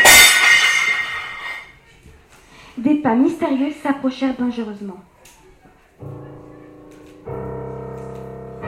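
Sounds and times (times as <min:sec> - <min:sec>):
bright ringing clang of saucepan: 0:00.0 - 0:01.7
saucepan and lid clattering to floor: 0:00.0 - 0:01.7
speech: 0:03.0 - 0:05.1.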